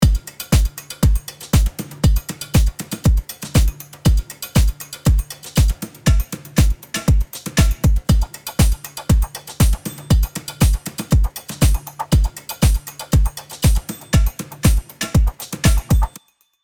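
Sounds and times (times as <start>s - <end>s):
full finished music beat: 0.0s - 16.3s.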